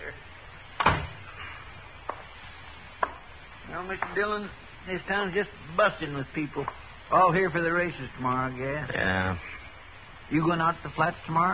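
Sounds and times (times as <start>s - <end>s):
low steady hiss: 0.0s - 11.5s
door shutting with a thud: 0.8s - 1.3s
speech: 3.8s - 9.5s, 10.3s - 11.5s.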